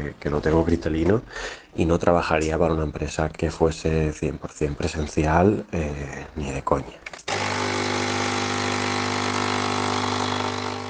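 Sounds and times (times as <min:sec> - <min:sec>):
speech: 0:00.0 - 0:07.1
coffee maker running with loud steady mechanical hum and buzz: 0:07.3 - 0:10.8.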